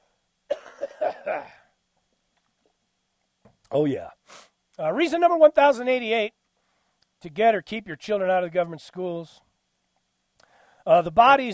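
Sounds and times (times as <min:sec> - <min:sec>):
person clearing throat and coughing: 0:00.5 - 0:01.7
speech: 0:01.3 - 0:01.6, 0:03.7 - 0:06.4, 0:07.2 - 0:09.5, 0:10.8 - 0:11.5.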